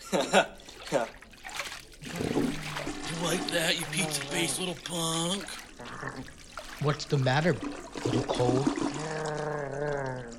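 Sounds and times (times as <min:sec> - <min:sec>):
toilet water sloshing and gurgling as head is dunked: 0:00.0 - 0:10.3
speech: 0:00.1 - 0:00.5, 0:04.5 - 0:08.9
vocal sounds of struggle: 0:02.1 - 0:06.4, 0:08.4 - 0:10.3.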